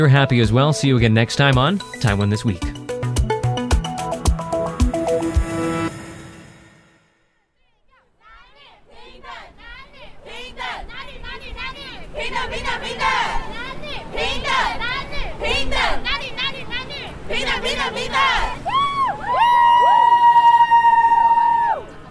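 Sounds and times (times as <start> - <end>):
speech: 0.0 - 2.8
music: 0.0 - 7.3
demonstrators chanting loud sustained shouts at a street march: 8.4 - 18.6
large crowd of demonstrators with overlapping voices and cheers: 8.5 - 22.1.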